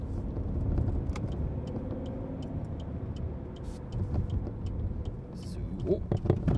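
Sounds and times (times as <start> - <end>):
car engine labouring uphill in third gear on an 18 percent grade: 0.0 - 6.5.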